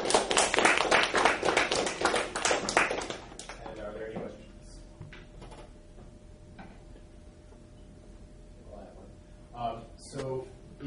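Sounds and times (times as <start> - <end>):
audience applause after a talk: 0.0 - 3.6.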